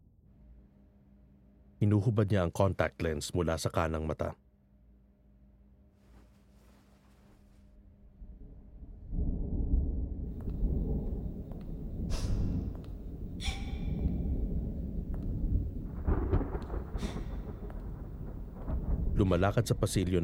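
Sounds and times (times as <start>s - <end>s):
speech: 1.8s - 4.4s, 19.3s - 20.2s
deep rolling thunder in a lightning storm: 8.8s - 20.2s.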